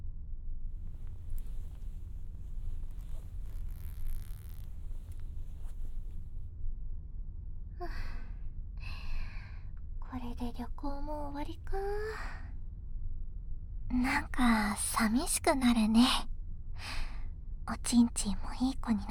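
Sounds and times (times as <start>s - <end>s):
low steady rumble: 0.0s - 19.1s
trouser zipper being pulled closed: 1.0s - 6.2s
speech: 10.2s - 12.4s, 13.9s - 16.3s, 17.7s - 19.1s.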